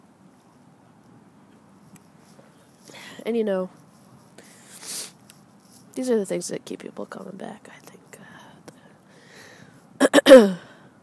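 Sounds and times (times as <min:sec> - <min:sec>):
speech: 0:03.2 - 0:03.8, 0:06.0 - 0:07.8, 0:10.3 - 0:10.7
coughing: 0:10.0 - 0:10.8.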